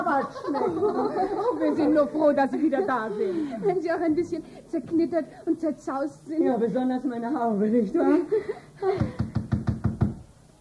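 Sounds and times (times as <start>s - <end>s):
laughter: 0.0s - 4.0s
speech: 0.0s - 9.2s
knocking on a door: 9.0s - 10.2s.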